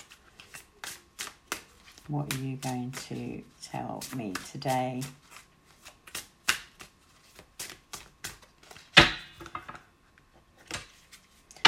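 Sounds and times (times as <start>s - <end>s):
deck of tarot cards being shuffled: 0.0s - 8.9s
speech: 2.1s - 5.2s.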